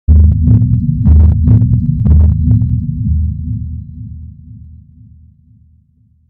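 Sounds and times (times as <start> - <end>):
distant drum: 0.1 - 4.8.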